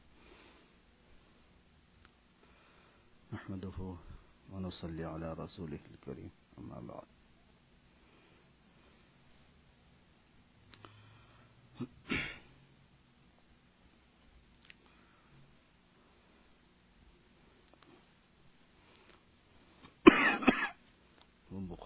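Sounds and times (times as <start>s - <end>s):
speech: 3.3s - 7.2s
person ill with fever clearing their throat: 11.8s - 12.5s, 20.1s - 20.8s
person ill with fever coughing: 11.8s - 12.5s, 20.0s - 20.8s.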